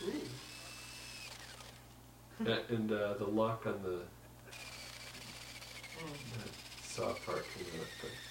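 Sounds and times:
spinning hole cutter sanding against a wooden picnic table: 0.0s - 1.9s, 4.5s - 8.2s
speech: 2.4s - 4.6s, 6.0s - 8.2s.

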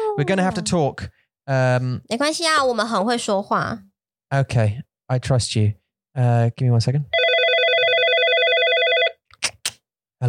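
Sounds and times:
speech: 0.2s - 7.2s
telephone ringing with electronic warbling: 7.1s - 9.2s.

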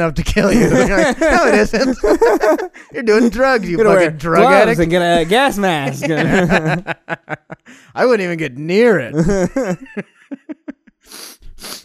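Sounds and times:
speech: 0.0s - 11.8s
laughter: 0.4s - 7.7s, 9.2s - 10.9s
person with COVID sniffing: 11.0s - 11.8s.

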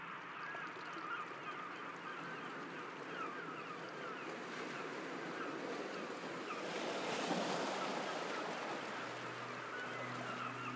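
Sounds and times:
Mediterranean Sea water lapping against the rocky shore of an island: 0.1s - 10.6s.

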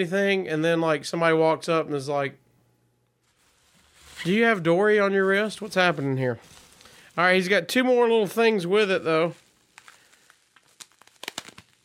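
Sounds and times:
speech: 0.0s - 2.4s, 4.2s - 6.6s, 7.2s - 9.4s
tissue paper, bubble wrap and rubber band crinkling as ceramic eggplant is unwrapped: 3.2s - 11.8s.

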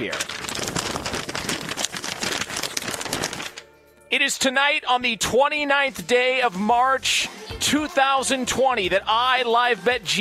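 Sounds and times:
speech: 0.0s - 0.3s, 4.2s - 10.1s
paper rustling and crinkling: 0.0s - 3.8s.

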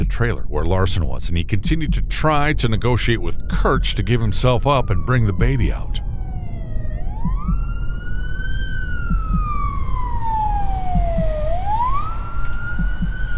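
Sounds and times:
speech: 0.0s - 6.0s
low rumble of traffic or engine noise: 0.0s - 13.3s
loud ambulance siren wailing in rising and falling sweeps: 2.4s - 13.3s.

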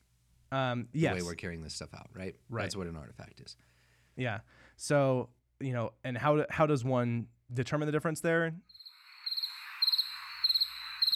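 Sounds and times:
speech: 0.5s - 8.8s
continuous hum of insects: 8.7s - 11.1s
crickets chirping: 8.7s - 11.1s.

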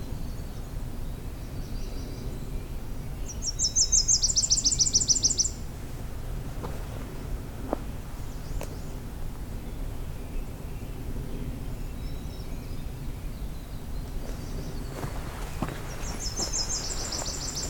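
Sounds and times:
winter wren singing in distance: 0.0s - 5.7s, 7.1s - 17.6s
footsteps on a trail: 6.5s - 8.0s, 14.2s - 17.6s.

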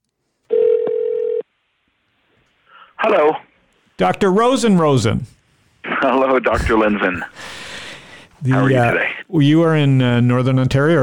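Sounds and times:
electronic telephone tone as a call is dialed: 0.5s - 1.4s
speech: 3.0s - 7.6s, 8.4s - 11.0s.

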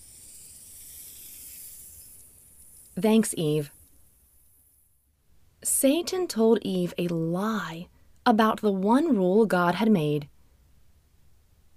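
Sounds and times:
snake hissing steadily: 0.0s - 5.0s
speech: 3.0s - 3.8s, 5.8s - 10.3s.

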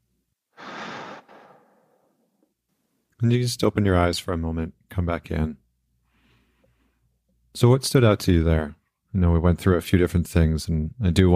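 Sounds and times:
deep breath in and out during a guided relaxation exercise: 0.5s - 2.3s, 6.0s - 7.2s
speech: 3.2s - 5.6s, 7.6s - 11.3s.

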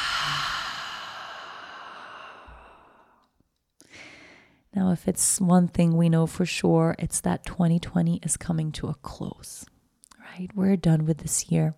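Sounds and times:
deep exhale through an open mouth: 0.0s - 3.2s
speech: 4.8s - 9.7s, 10.4s - 11.7s.

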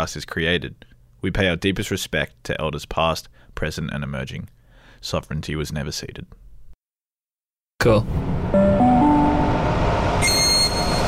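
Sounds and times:
speech: 0.0s - 6.4s, 7.8s - 8.8s
train at a platform rumbling along the rails: 9.4s - 11.0s
train high-pitched wheel squeal: 9.9s - 11.0s.

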